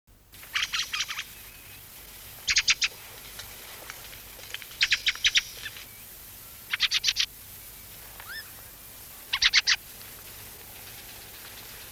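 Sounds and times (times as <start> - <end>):
krammes flight calls: 0.4 - 6.0, 9.3 - 11.8.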